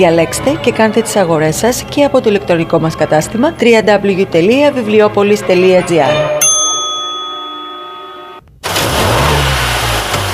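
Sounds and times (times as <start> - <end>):
speech: 0.0 - 6.4
steady ringing tone: 6.4 - 8.4
car engine revving and accelerating: 8.6 - 10.3.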